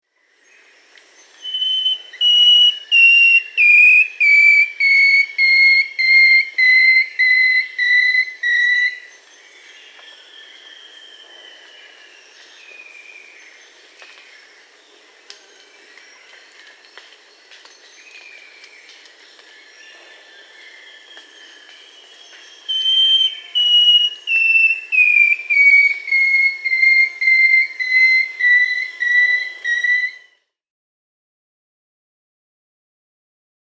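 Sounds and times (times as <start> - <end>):
Long-tailed Woodcreeper Deconychura longicauda in Peru: 1.2 - 9.1, 20.4 - 30.3.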